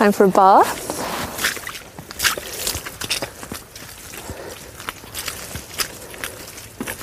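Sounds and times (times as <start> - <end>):
speech: 0.0 - 0.9
squelchy footsteps in woodland mud along a bendy path: 0.1 - 7.0.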